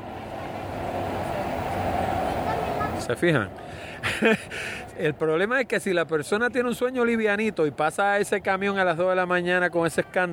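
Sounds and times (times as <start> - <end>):
group of motorcycles rumbling past outside: 0.0 - 3.2
laughter: 2.2 - 3.1, 3.9 - 4.8
speech: 3.1 - 10.3.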